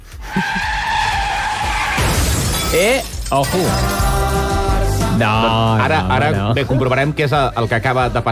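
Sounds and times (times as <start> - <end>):
car tires skidding: 0.1 - 2.1
car collision: 0.9 - 4.3
speech: 2.7 - 4.0, 5.2 - 8.3.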